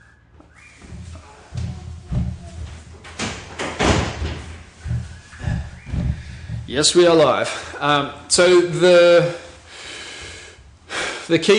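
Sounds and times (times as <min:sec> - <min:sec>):
door thudding and slamming with heavy bangs and rattles: 0:01.6 - 0:06.4
speech: 0:06.7 - 0:09.4, 0:11.3 - 0:11.5.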